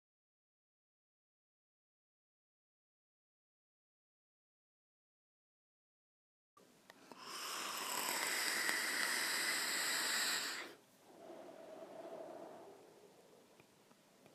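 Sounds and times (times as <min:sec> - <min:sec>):
vape inhale: 0:07.0 - 0:13.4.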